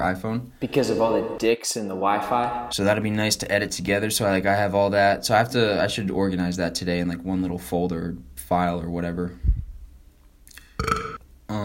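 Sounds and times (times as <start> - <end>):
speech: 0.0 - 9.5
loud throaty burp: 10.7 - 11.6.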